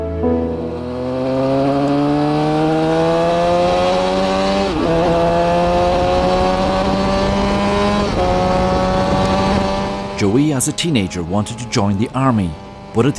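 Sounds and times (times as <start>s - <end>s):
racing motorcycle engine roaring and accelerating: 0.1s - 13.1s
speech: 10.6s - 13.1s.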